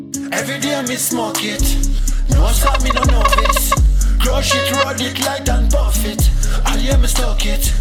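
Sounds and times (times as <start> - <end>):
speech: 0.3 - 7.7
loud reggae hip-hop trap track: 0.4 - 7.7
warbling chopped vocal-like sounds: 2.5 - 3.8, 4.5 - 4.9.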